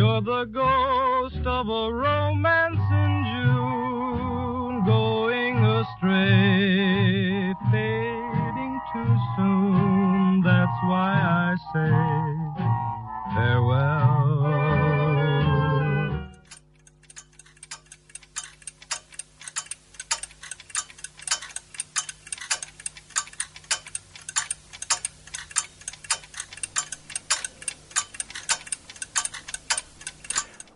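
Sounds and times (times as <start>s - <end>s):
brief burst of music: 0.0s - 16.5s
speech: 0.2s - 4.2s
clock ticking: 16.3s - 30.7s.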